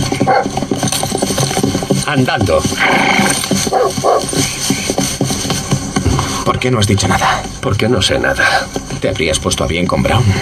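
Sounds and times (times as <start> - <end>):
several dogs barking and yipping: 0.0 - 1.8, 2.8 - 5.9
speech: 2.1 - 4.3, 6.6 - 10.3.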